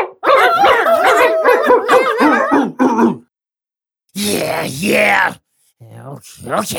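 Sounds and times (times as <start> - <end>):
boxer dog barking and yowling: 0.0 - 3.3
speech: 4.3 - 5.4, 6.1 - 6.7.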